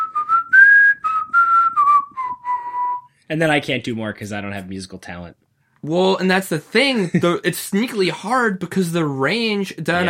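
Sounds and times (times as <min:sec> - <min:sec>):
person whistling a bouncy cartoon theme melody: 0:00.0 - 0:03.1
speech: 0:03.3 - 0:10.0.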